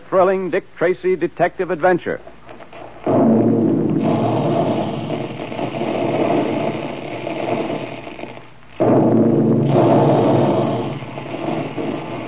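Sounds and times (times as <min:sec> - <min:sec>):
speech: 0:00.1 - 0:02.3
puffing guns blasting wheat and rice in a cereal process: 0:02.8 - 0:12.2.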